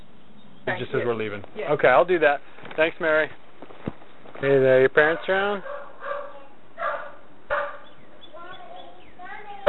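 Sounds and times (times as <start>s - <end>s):
speech: 0.7s - 3.4s, 4.4s - 5.7s
dog barking at a house: 5.0s - 7.9s.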